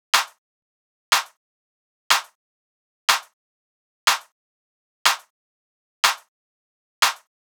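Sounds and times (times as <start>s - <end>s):
handclap at 122 bpm: 0.1s - 0.4s, 1.1s - 1.4s, 2.1s - 2.4s, 3.1s - 3.4s, 4.1s - 4.3s, 5.1s - 5.3s, 6.0s - 6.3s, 7.0s - 7.3s.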